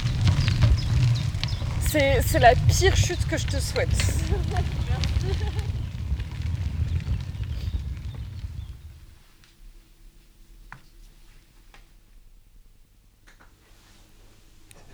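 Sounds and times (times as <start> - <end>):
crackling fire with snaps and low rumble: 0.0 - 10.8
speech: 1.9 - 5.6.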